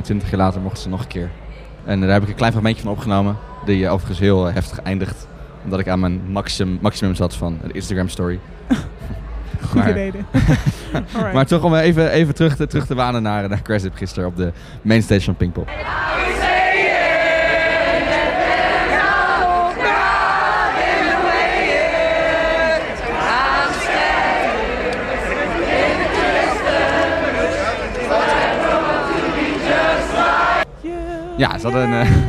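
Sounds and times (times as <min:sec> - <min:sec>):
speech: 0:00.0 - 0:16.4, 0:31.4 - 0:32.2
laughter: 0:08.7 - 0:11.5, 0:31.6 - 0:32.2
big outdoor festival crowd singing a cappella: 0:15.7 - 0:32.2.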